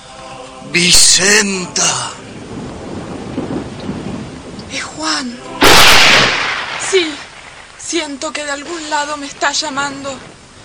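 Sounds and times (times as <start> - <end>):
steady rain hissing: 0.0 - 10.6
speech: 0.6 - 2.2, 8.0 - 10.4
thunder rumbling: 2.1 - 8.2.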